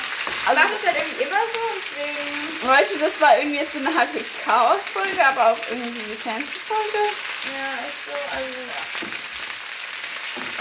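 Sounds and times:
potatoes frying in a pan: 0.0 - 10.5
speech: 0.5 - 9.2.

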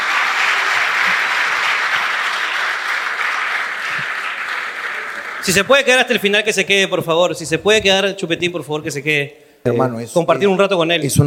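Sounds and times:
sustained applause from a sizable audience: 0.0 - 6.4
speech: 5.5 - 11.2.

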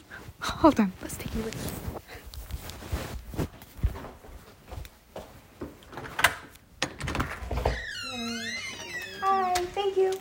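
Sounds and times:
speech: 0.6 - 1.9
door creaking: 5.9 - 10.1.

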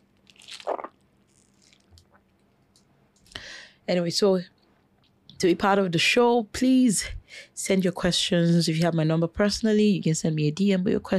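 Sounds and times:
person sipping water: 0.3 - 2.3
faint mouth and swallowing sounds: 0.4 - 2.2
speech: 3.9 - 4.6, 5.4 - 11.1.

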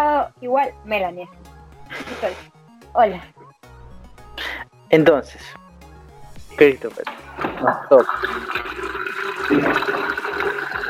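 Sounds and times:
speech: 0.2 - 3.4, 4.9 - 5.6, 6.6 - 10.5
water running into a container being filled: 7.4 - 10.8.

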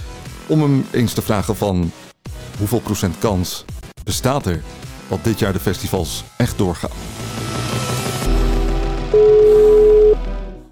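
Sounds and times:
speech: 0.5 - 2.0, 2.6 - 7.2
telephone ringback tone while placing a call: 9.1 - 10.2.

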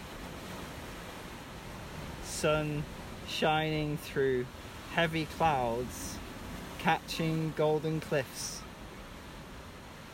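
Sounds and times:
sea waves rolling in below cliffs: 0.0 - 10.1
speech: 2.4 - 6.2, 6.8 - 8.6.

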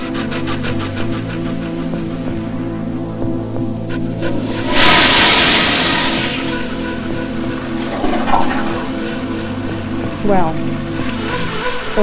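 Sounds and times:
steady low hum: 0.0 - 12.0
toilet flushing with clothes and a shirt thrown into it: 4.2 - 9.9
speech: 10.3 - 10.6.

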